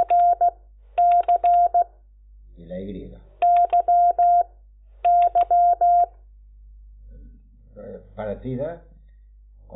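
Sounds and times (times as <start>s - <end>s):
Morse code calling tones on HF radio: 0.0s - 1.8s, 3.4s - 4.5s, 5.1s - 6.1s
speech: 8.4s - 8.9s.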